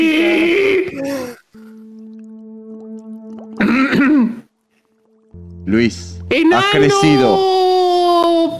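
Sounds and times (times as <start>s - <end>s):
quiet steady tone: 0.0s - 8.4s
raspy throat clearing: 3.6s - 4.4s
speech: 5.7s - 7.6s.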